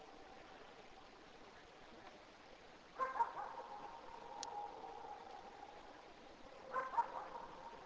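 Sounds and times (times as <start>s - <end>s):
dog barking in the distance: 3.0s - 3.8s, 6.7s - 7.6s.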